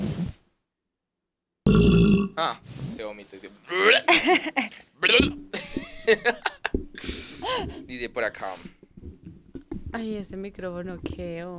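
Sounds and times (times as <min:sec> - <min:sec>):
loud guttural burp: 0:01.6 - 0:02.4, 0:05.0 - 0:05.5
speech: 0:01.7 - 0:08.8, 0:09.9 - 0:11.5
laughter: 0:04.0 - 0:04.8, 0:05.6 - 0:07.8.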